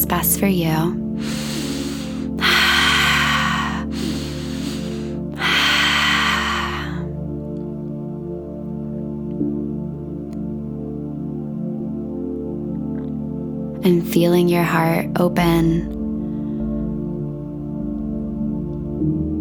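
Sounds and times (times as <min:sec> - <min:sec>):
speech: 0:00.0 - 0:01.4, 0:13.9 - 0:16.0
low musical drone: 0:00.0 - 0:19.3
slow breathing during a guided meditation: 0:01.2 - 0:07.4, 0:16.0 - 0:18.0.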